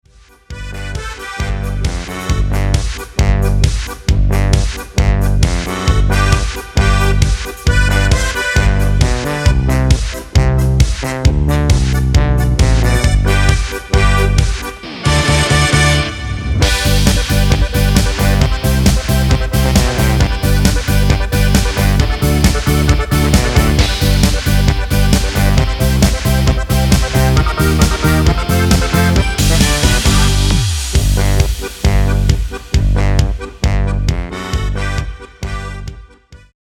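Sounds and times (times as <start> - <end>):
music in G major without choir: 0.2 - 36.5.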